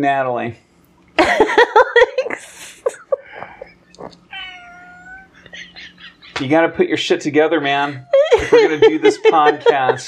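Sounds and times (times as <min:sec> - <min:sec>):
speech: 0:00.0 - 0:03.0, 0:04.0 - 0:04.2, 0:06.4 - 0:10.0
laughter: 0:01.2 - 0:04.1, 0:05.3 - 0:10.0
several cats yowling and meowing: 0:03.3 - 0:06.3, 0:07.5 - 0:08.5
long tonal cat caterwaul: 0:03.5 - 0:06.2.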